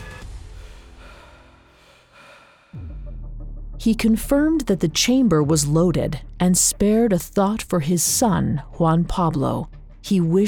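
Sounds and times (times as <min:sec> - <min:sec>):
man panting out of breath: 0:00.5 - 0:02.8
speech: 0:03.8 - 0:10.4.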